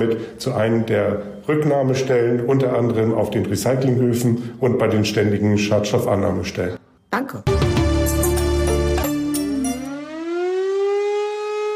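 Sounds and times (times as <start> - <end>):
speech: 0.0 - 8.2
civil defense siren wailing: 8.8 - 11.7.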